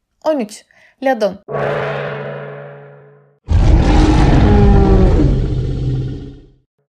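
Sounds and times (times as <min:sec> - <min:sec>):
speech: 0:00.2 - 0:02.0
dragon roar sound effect for a serpent-like hundred-headed dragon: 0:03.5 - 0:06.6.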